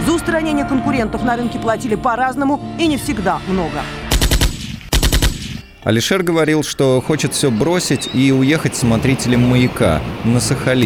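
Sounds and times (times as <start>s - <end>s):
speech: 0.1s - 4.0s, 5.8s - 10.8s
rapid gunfire: 4.1s - 5.6s.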